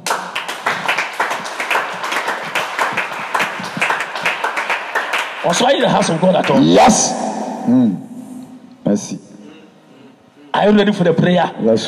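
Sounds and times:
crowd clapping at a church service: 0.0 - 7.2
speech: 5.4 - 8.1, 8.9 - 9.3, 10.6 - 11.8.

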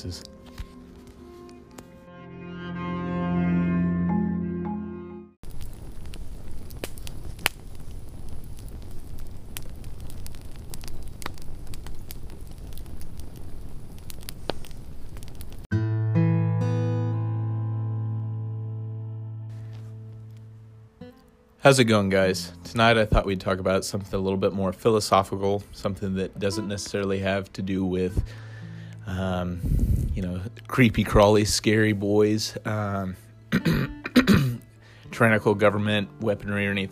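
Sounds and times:
speech: 0.0 - 0.4, 21.6 - 28.5, 29.1 - 34.4, 35.2 - 36.9
crackling campfire with sharp pops: 0.0 - 2.0, 5.4 - 15.7, 19.4 - 36.9
soft melodic music: 0.0 - 5.4, 15.7 - 29.6, 30.2 - 36.9.

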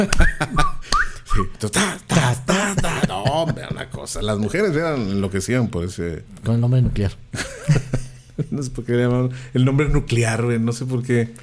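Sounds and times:
speech: 0.0 - 0.7, 1.4 - 2.4, 4.1 - 7.4, 8.6 - 11.4
laughter: 0.0 - 0.8, 2.1 - 4.0, 7.4 - 8.7
short rising human whistled chirps: 0.2 - 1.5
voiced murmuring: 1.4 - 5.5.

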